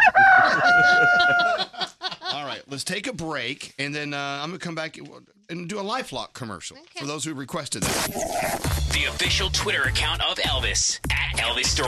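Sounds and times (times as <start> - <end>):
rooster crowing: 0.0 - 1.8
laughter: 0.0 - 2.6
speech: 0.8 - 1.6, 2.7 - 11.8.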